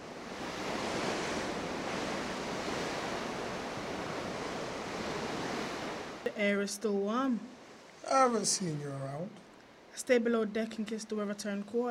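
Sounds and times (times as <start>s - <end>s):
ocean waves: 0.0s - 8.9s, 9.5s - 10.0s
speech: 6.4s - 7.5s, 8.1s - 9.4s, 10.0s - 11.8s.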